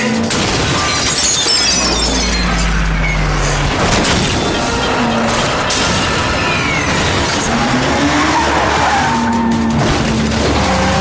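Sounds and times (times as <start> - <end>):
glass shattering: 0.2 - 8.3
bright tinkling glass fragments: 0.3 - 5.2
dense continuous crashing din: 0.3 - 10.8
deep rumble: 1.6 - 8.7.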